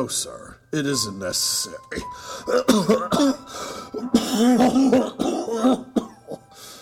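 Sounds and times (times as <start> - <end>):
speech: 0.0 - 5.9
man in a harsh coughing fit: 2.5 - 6.4.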